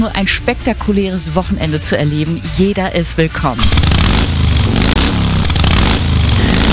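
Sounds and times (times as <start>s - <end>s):
speech: 0.0s - 5.0s
motorcycle engine revving: 3.5s - 6.7s.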